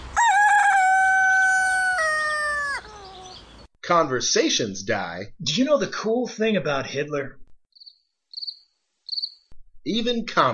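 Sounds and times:
rooster crowing: 0.0s - 3.4s
speech: 3.9s - 7.4s, 9.8s - 10.5s.

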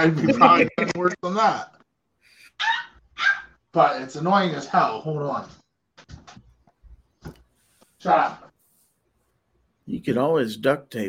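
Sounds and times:
laughter: 0.0s - 1.2s
speech: 0.0s - 1.8s, 2.6s - 5.6s, 8.0s - 8.5s, 9.9s - 11.0s
dog barking because her ball is stuck under the TV stand: 2.6s - 3.6s.

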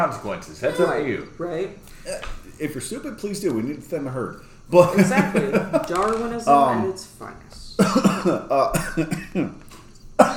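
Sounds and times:
speech: 0.0s - 9.6s
laughter: 4.8s - 6.2s
abrupt cough: 7.8s - 9.6s.

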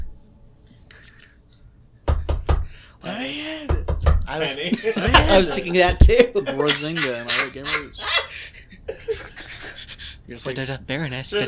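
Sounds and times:
speech: 3.0s - 8.5s, 10.3s - 11.4s
loud knocks on a front gate: 3.7s - 4.3s
laughter: 4.4s - 10.0s, 11.3s - 11.4s.

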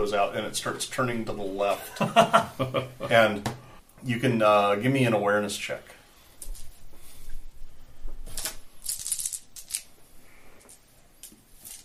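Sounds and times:
speech: 0.0s - 6.0s
laughter: 1.7s - 3.2s
dice clattering and tumbling across a hard tabletop: 8.4s - 9.9s.

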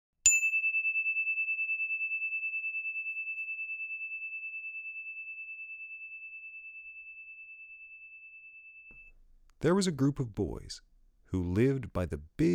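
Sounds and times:
bell ding signalling start of story: 0.3s - 9.1s
speech: 9.0s - 12.5s.

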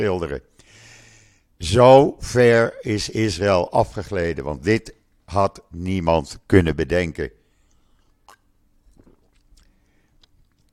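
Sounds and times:
speech: 0.0s - 0.8s, 1.6s - 7.4s
faint hum: 0.0s - 10.7s
person sipping water: 7.5s - 10.7s
gulp: 7.6s - 10.7s
wet mouth clicks: 7.6s - 10.7s.

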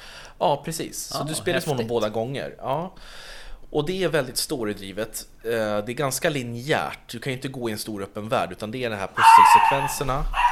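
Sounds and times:
speech: 0.4s - 10.5s
dog barking loudly: 9.2s - 10.5s.

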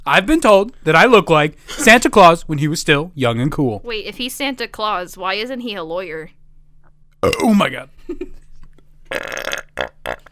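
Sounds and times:
speech: 0.0s - 6.4s, 7.2s - 8.4s, 9.1s - 10.2s
loud burps: 7.2s - 7.7s, 9.1s - 10.2s.

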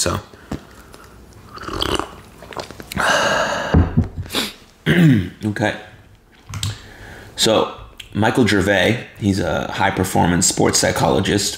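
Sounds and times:
speech: 0.0s - 0.4s, 4.9s - 5.9s, 7.4s - 11.5s
person sipping and swallowing a drink: 1.4s - 3.1s
soft breathy exhale: 3.0s - 4.6s, 6.8s - 7.4s.

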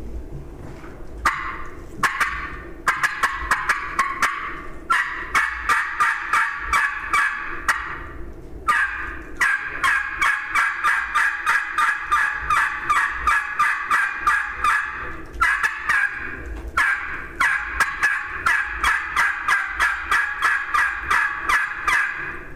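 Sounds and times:
turkey tube call imitating turkey gobbles: 1.2s - 8.1s, 8.7s - 22.5s.

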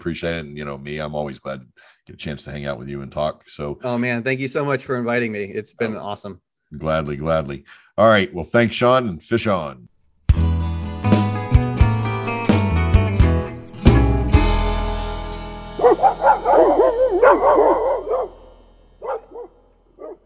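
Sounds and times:
speech: 0.0s - 10.5s
loud strummed chords: 10.3s - 20.0s
old hound dogs barking and baying while chasing something: 15.8s - 18.4s.

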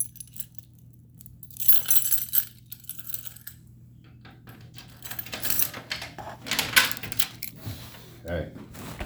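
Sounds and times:
keys jangling and clinking: 0.0s - 3.6s, 4.2s - 7.6s
steady low hum: 0.0s - 9.0s
handling noises: 1.2s - 9.0s.

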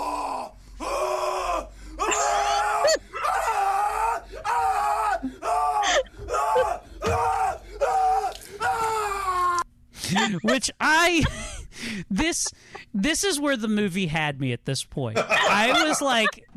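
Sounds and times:
man screaming after chugging vodka: 0.0s - 9.6s
laughter: 10.0s - 11.5s, 12.1s - 13.0s, 15.2s - 16.5s
speech: 13.1s - 16.5s.

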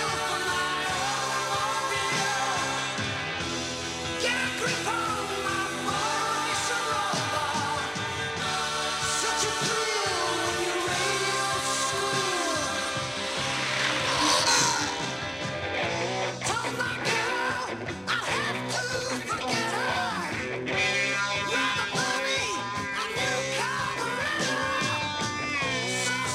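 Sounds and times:
loud dense rock song with drums, heavy guitars and strained vocals: 0.0s - 26.3s
car engine revving: 8.7s - 16.2s.

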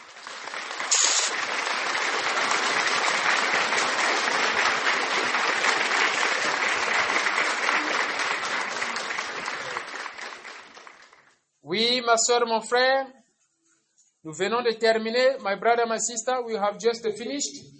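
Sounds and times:
large audience applauding: 0.0s - 11.4s
speech: 11.8s - 13.2s, 14.2s - 17.7s.

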